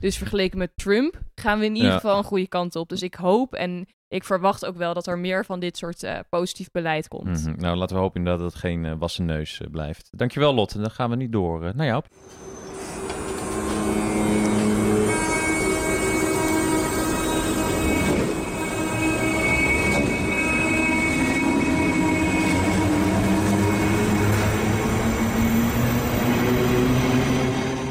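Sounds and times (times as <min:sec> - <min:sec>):
speech: 0:00.0 - 0:13.1
train wheels squealing on rails: 0:12.2 - 0:27.8.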